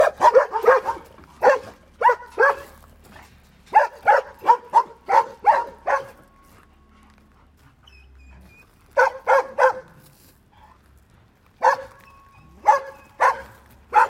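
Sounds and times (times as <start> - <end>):
dogs barking: 0.0 - 6.4, 8.9 - 10.0, 11.6 - 14.0.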